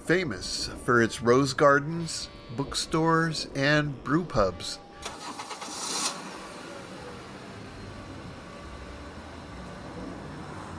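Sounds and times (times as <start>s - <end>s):
speech: 0.1s - 5.2s
newly rebuilt engine of an old Stegelak 900 car starting: 5.0s - 10.7s.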